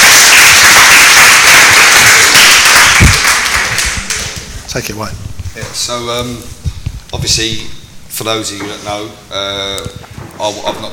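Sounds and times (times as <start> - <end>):
audience applause in a church: 0.0 - 4.4
speech: 4.8 - 10.9.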